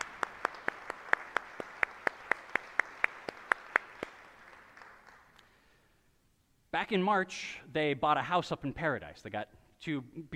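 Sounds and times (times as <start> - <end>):
audience applause with sharp evenly spaced claps: 0.0 - 5.5
speech: 6.8 - 10.3.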